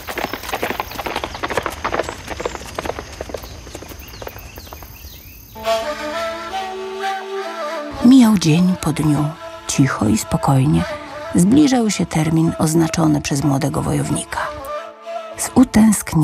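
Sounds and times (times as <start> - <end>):
many horses carrying a band of riders galloping: 0.0 - 5.4
speech: 8.2 - 14.4, 15.5 - 16.2.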